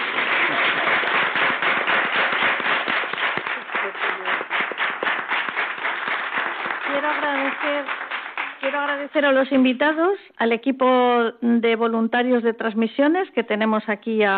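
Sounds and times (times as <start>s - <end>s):
studio audience on a radio programme applauding: 0.0s - 9.6s
speech: 7.3s - 8.0s, 8.6s - 14.3s.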